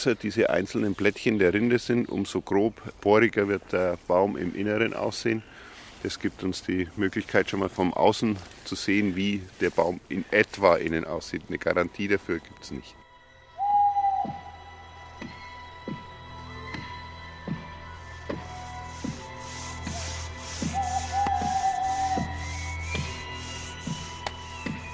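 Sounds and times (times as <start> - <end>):
speech: 0.0 - 13.0, 14.2 - 14.4
small owl hooting in treetops: 13.6 - 14.7, 19.6 - 24.2
faint rasping sawing at a tree trunk: 18.4 - 24.2.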